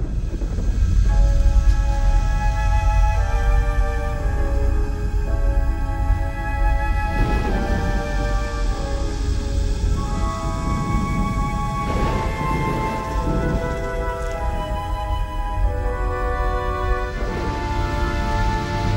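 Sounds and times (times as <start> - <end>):
deep rumbling low drone: 0.0 - 18.9
slow brooding orchestral film score music: 0.0 - 18.9.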